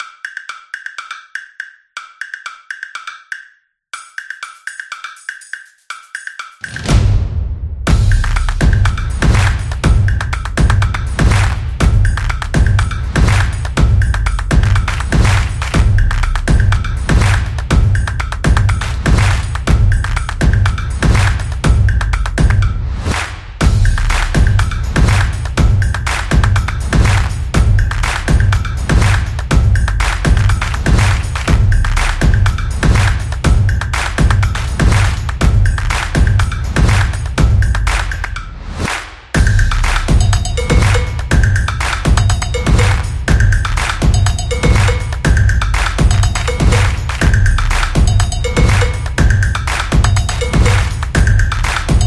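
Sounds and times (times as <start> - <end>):
upbeat percussion drums: 0.0 - 52.0.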